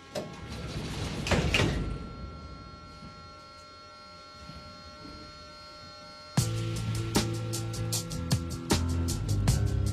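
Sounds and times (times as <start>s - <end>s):
subway train doors closing with hiss and thump: 0.0s - 3.2s
steady electrical hum: 0.0s - 9.9s
subway train motors starting with rising droning whine: 0.0s - 9.9s.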